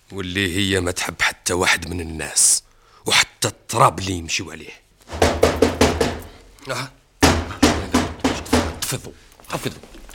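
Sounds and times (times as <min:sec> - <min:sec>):
speech: 0:00.1 - 0:04.8, 0:06.7 - 0:07.0, 0:08.9 - 0:10.0
sharp loud knocking on a door: 0:05.1 - 0:06.4, 0:07.2 - 0:08.9.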